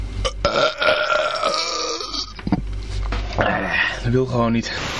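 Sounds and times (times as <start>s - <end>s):
croaking belch: 0.2s - 2.4s, 3.4s - 3.8s
long loud rumbling burp: 0.2s - 2.4s, 3.3s - 4.0s
speech: 4.3s - 4.9s.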